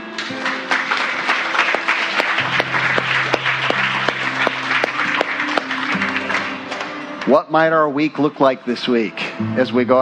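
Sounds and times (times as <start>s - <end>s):
church audience applause after a prayer: 0.0s - 7.0s
low sustained organ or keyboard tone: 1.8s - 6.8s
speech: 7.3s - 10.0s.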